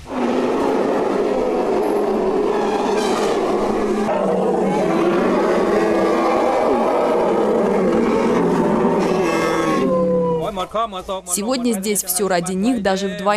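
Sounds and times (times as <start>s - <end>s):
Thai elephants trumpeting in an elephant village park in Ayutthaya Thailand: 0.0s - 10.5s
speech: 10.8s - 13.3s.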